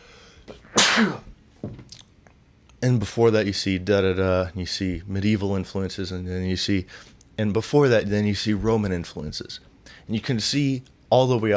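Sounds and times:
speech: 0.5s - 1.3s, 2.8s - 11.5s
person sneezing: 0.6s - 1.3s.

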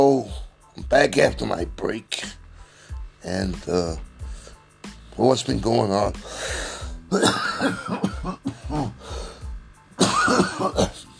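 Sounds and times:
speech: 0.0s - 2.4s, 3.2s - 4.1s, 5.2s - 9.2s, 10.4s - 11.0s
wet phlegmy coughing: 7.1s - 9.0s, 10.0s - 11.1s.

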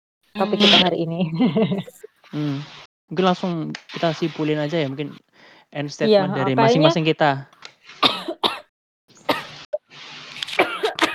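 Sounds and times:
laughter: 0.4s - 5.2s, 5.8s - 7.4s
speech: 0.4s - 8.1s
person coughing roughly: 6.1s - 7.0s, 10.6s - 11.1s.

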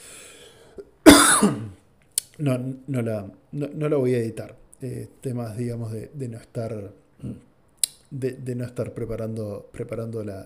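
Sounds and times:
soft breath: 0.0s - 0.9s
harsh throaty cough: 1.1s - 1.8s
speech: 2.4s - 7.5s, 8.1s - 10.4s.

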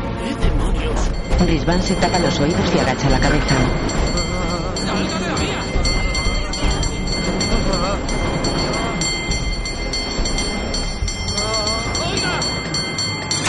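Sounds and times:
tram rumbling along tracks in the middle of a city street: 0.0s - 13.4s
laughter: 0.3s - 9.8s
speech: 1.4s - 4.1s.

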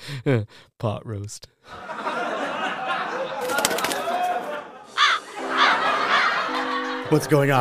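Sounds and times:
speech: 0.1s - 2.0s, 7.1s - 7.6s
laughter: 1.7s - 7.3s
giant crow cawing on a windowsill: 5.0s - 6.2s.

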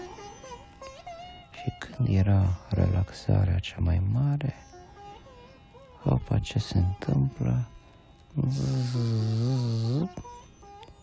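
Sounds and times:
speech: 2.0s - 4.7s, 6.0s - 7.8s, 8.4s - 10.4s
voice imitating a mosquito buzzing: 8.5s - 10.4s.

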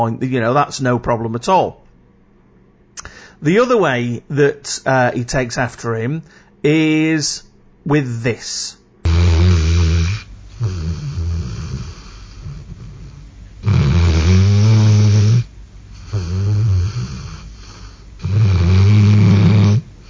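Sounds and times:
speech: 0.0s - 1.8s, 3.4s - 8.8s
dog snoring loudly: 9.0s - 20.0s.

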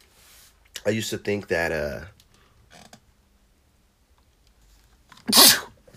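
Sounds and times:
speech: 0.8s - 2.2s
person sneezing forcefully: 5.3s - 5.8s.

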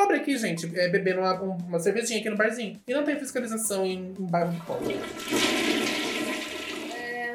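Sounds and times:
speech: 0.1s - 5.9s
toilet flushing: 4.5s - 7.3s.

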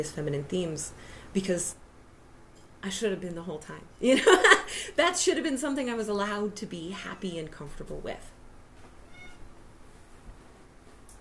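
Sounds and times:
speech: 0.0s - 1.8s, 2.8s - 8.4s
steady low hum: 0.0s - 11.1s
female cat meowing: 9.0s - 9.5s.

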